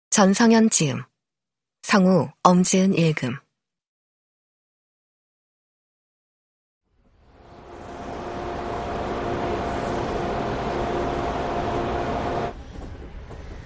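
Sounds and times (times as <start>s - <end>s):
speech: 0.1s - 1.1s, 1.9s - 3.4s
train running out of a tunnel: 7.1s - 13.6s.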